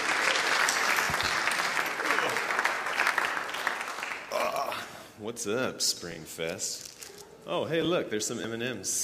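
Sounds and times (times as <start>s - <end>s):
large audience applauding at a gospel event: 0.0s - 4.4s
speech: 5.2s - 9.0s.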